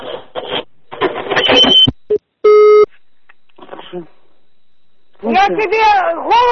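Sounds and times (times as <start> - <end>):
loud steady telephone busy tone: 0.8 - 5.7
speech: 5.3 - 6.5.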